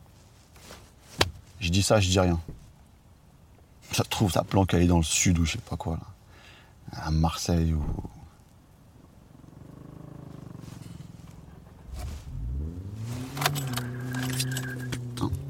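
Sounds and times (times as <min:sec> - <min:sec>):
speech: 0:01.6 - 0:02.6, 0:04.0 - 0:06.1, 0:06.9 - 0:08.2
car engine cranking, revving and idling: 0:09.4 - 0:15.4
keys jingling: 0:13.2 - 0:15.1.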